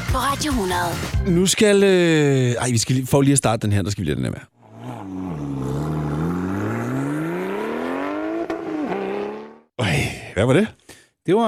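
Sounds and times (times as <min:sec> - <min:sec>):
speech: 0:00.1 - 0:04.6, 0:09.8 - 0:11.4
Porsche sports car engine revving: 0:04.6 - 0:09.7.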